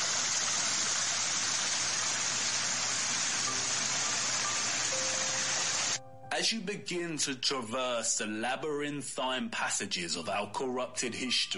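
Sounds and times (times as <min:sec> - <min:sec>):
stream water flowing: 0:00.0 - 0:06.0
speech: 0:06.4 - 0:11.5.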